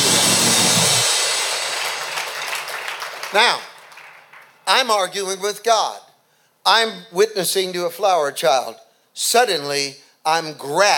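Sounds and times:
audience clapping: 0.0s - 4.7s
speech: 3.3s - 3.7s, 4.7s - 6.0s, 6.6s - 10.9s.

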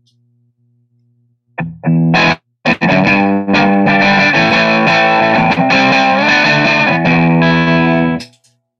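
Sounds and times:
overdriven electric guitar through a brownface amp modeler: 1.6s - 8.4s.

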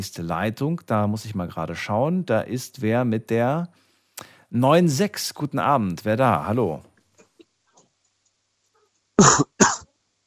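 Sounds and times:
speech: 0.0s - 6.9s, 9.2s - 9.5s
person coughing: 9.2s - 9.9s.

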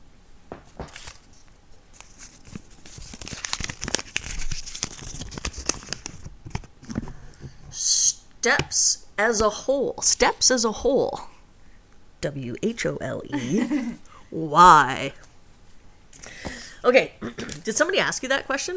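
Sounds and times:
folded paper topic slip crinkling and rustling while being opened: 0.8s - 7.1s
speech: 8.4s - 11.3s, 12.2s - 15.2s, 16.8s - 18.7s.

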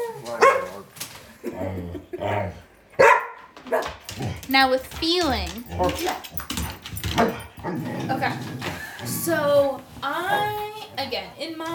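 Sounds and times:
dog barking: 0.4s - 0.8s, 3.0s - 3.9s
speech: 1.6s - 2.7s, 3.7s - 6.4s, 7.2s - 11.7s.

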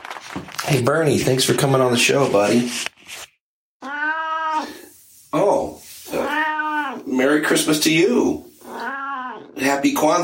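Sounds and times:
speech: 0.7s - 3.3s, 7.5s - 8.5s, 9.6s - 10.2s
cat meowing: 3.8s - 4.8s, 6.1s - 7.2s, 8.5s - 9.6s.

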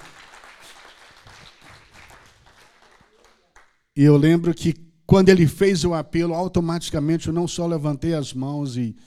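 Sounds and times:
crowd applauding: 0.0s - 3.8s
speech: 4.0s - 9.0s.

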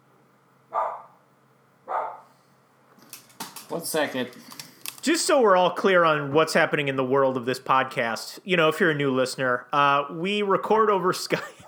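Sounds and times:
dog barking: 0.7s - 1.2s, 1.9s - 2.3s
speech: 3.7s - 11.6s.

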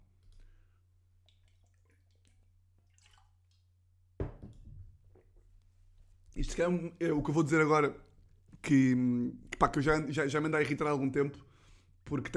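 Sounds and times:
person sipping water with wet mouth sounds: 0.1s - 3.7s
glass thump and rustle: 4.2s - 4.9s
speech: 6.4s - 11.5s, 12.1s - 12.3s.

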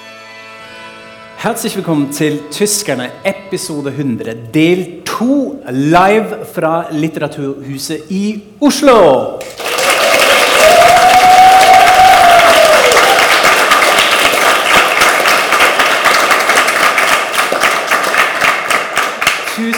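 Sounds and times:
speech: 1.4s - 9.6s
live audience applauding: 9.4s - 19.7s
live audience whooping and cheering: 9.6s - 18.2s.

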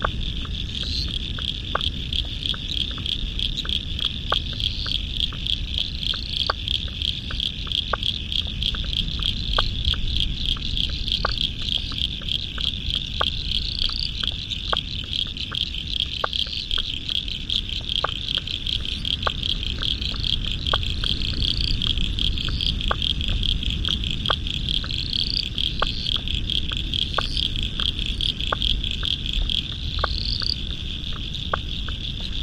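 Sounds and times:
low rumble of the South Pacific Ocean: 0.0s - 32.4s
spring frog chorus trilling at dusk in Royal National Park: 0.0s - 32.4s.

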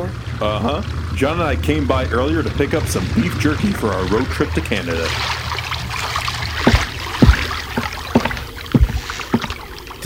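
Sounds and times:
steady wash of water around a small boat: 0.0s - 10.0s
paddle splashes: 0.3s - 10.0s
speech: 0.4s - 5.6s
hollow knocks against a small boat hull: 4.1s - 9.9s.

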